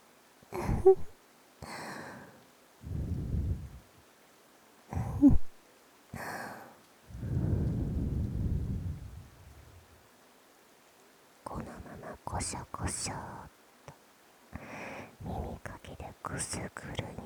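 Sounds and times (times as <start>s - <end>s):
longer rumbling exhale: 0.6s - 4.0s, 5.0s - 5.4s, 6.2s - 10.0s
soft cool breath blown into microphone: 0.6s - 4.0s, 6.2s - 10.0s
speech: 0.8s - 1.1s, 12.5s - 13.4s, 16.4s - 17.0s.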